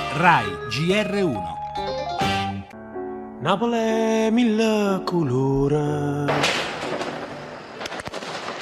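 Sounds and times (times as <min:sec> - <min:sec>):
speech: 0:00.2 - 0:01.9, 0:03.4 - 0:06.7
fireworks cracking and popping in Naples: 0:06.4 - 0:08.6.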